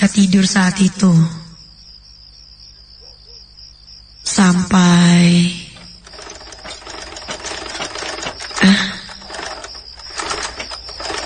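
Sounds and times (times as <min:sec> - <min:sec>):
speech: 0:00.1 - 0:01.4, 0:04.4 - 0:05.6
household sewing machine running: 0:06.0 - 0:11.2.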